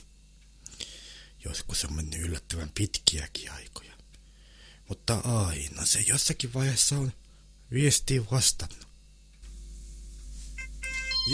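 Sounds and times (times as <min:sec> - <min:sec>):
low steady hum: 0:00.0 - 0:11.3
speech: 0:01.4 - 0:04.0, 0:04.9 - 0:08.9
phone ringtone for an incoming call: 0:10.6 - 0:11.3.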